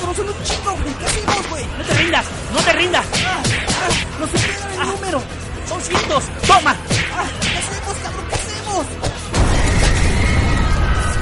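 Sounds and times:
speech: 0.2s - 9.0s
heavy rumbling roar: 9.3s - 11.1s
loud explosion: 9.3s - 11.1s.

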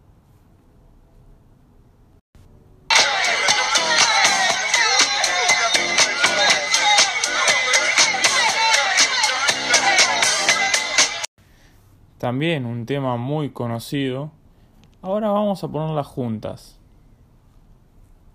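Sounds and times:
full-band pop song with driving drum beat: 2.9s - 11.3s
speech: 12.3s - 14.4s, 15.0s - 16.8s.

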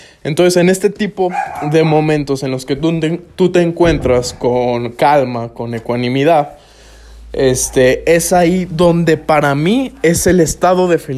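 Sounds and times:
speech: 0.2s - 6.6s, 7.3s - 11.1s
dog barking: 1.3s - 2.0s.

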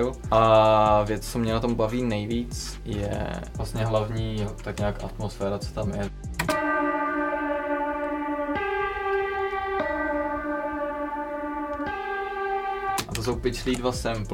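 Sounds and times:
speech: 0.0s - 6.6s, 13.2s - 14.3s
pitch-shifted church bell sample forming a simple melody: 6.5s - 13.6s.

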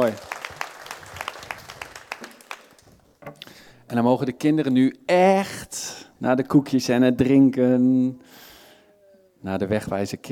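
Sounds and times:
speech: 0.0s - 0.3s, 3.9s - 8.3s, 9.4s - 10.3s
audience applauding: 0.0s - 3.0s.

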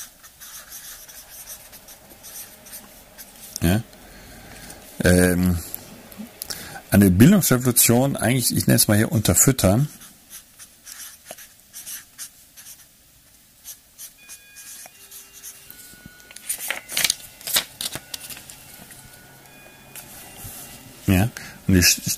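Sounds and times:
handwriting with a pen on paper: 0.0s - 2.5s, 10.0s - 12.8s
speech: 3.6s - 3.9s, 5.0s - 5.7s, 6.9s - 10.0s, 21.8s - 22.1s.

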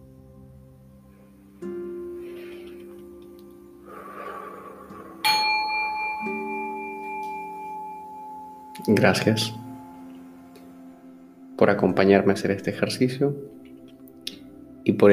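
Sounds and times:
soft steady drone: 0.0s - 15.1s
long breath: 2.0s - 3.0s, 3.8s - 5.3s
bell struck to end exercise: 5.2s - 10.2s
speech: 8.8s - 9.6s, 11.6s - 13.6s, 14.9s - 15.1s.

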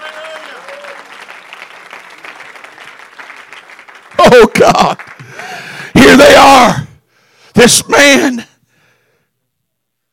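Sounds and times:
audience clapping hands: 0.0s - 5.8s
speech: 4.3s - 5.2s, 6.0s - 6.8s, 7.6s - 8.5s.

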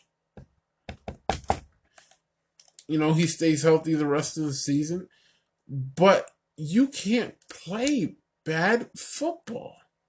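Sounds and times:
sharp knocks on a wooden surface: 0.4s - 1.7s
speech: 2.9s - 9.8s.

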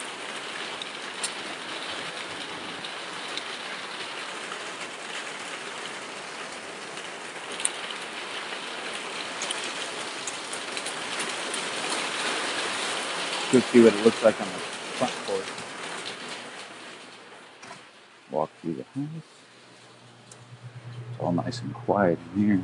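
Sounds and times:
raindrop ticks: 0.0s - 17.9s
heavy rain falling in hot weather: 0.0s - 20.7s
speech: 13.5s - 15.6s, 19.0s - 19.4s, 21.3s - 22.6s.

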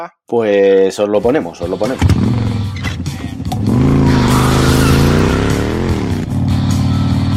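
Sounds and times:
speech: 0.0s - 2.6s
air-cooled Harley-Davidson motorcycle engine with five gears and chain drive revving: 2.0s - 7.3s.

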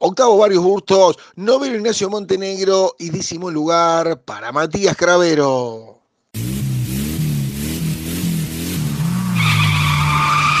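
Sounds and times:
speech: 0.1s - 6.6s
race car engine revving: 6.4s - 10.5s
race car tire squeal while skidding: 8.7s - 10.5s.

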